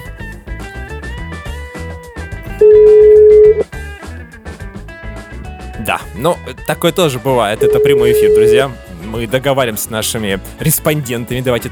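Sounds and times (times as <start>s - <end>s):
continuous music: 0.0s - 11.6s
long steady telephone ringing tone on the line: 2.6s - 3.6s, 7.6s - 8.7s
speech: 5.9s - 11.6s.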